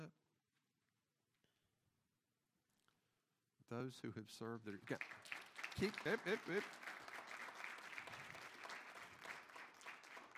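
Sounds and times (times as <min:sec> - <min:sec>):
speech: 0:03.7 - 0:06.9
large crowd applauding at a worship service: 0:04.7 - 0:10.3.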